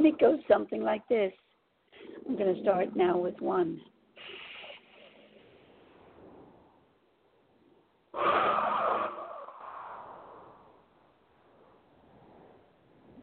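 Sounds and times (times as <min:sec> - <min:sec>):
speech: 0:00.2 - 0:04.4, 0:08.2 - 0:09.2
slow deep breathing during a breathing exercise: 0:04.2 - 0:08.0, 0:09.8 - 0:13.2.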